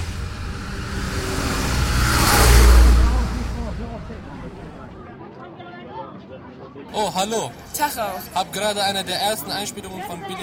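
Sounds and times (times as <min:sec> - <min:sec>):
car pulling away and accelerating: 0:00.0 - 0:05.0
speech: 0:07.0 - 0:10.4.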